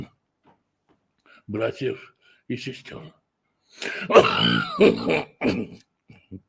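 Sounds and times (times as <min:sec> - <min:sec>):
speech: 0:01.5 - 0:06.4
person coughing with short soft hacks: 0:03.8 - 0:06.3
person clearing throat: 0:03.8 - 0:06.4.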